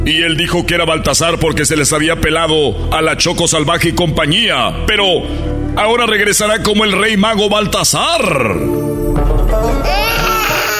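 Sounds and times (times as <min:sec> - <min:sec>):
speech: 0:00.1 - 0:10.0
small baby crying in high-pitched wails: 0:09.5 - 0:10.7.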